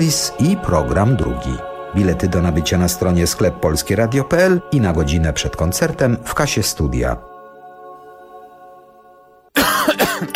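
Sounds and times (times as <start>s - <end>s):
speech: 0.0s - 7.3s
harsh coughing in a cough-syrup advertisement: 9.6s - 10.3s.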